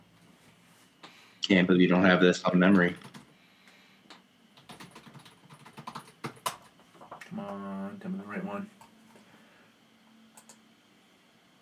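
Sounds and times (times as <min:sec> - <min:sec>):
speech: 0:01.5 - 0:03.1
typing on a computer keyboard: 0:02.7 - 0:03.3, 0:04.1 - 0:07.6, 0:10.4 - 0:10.6.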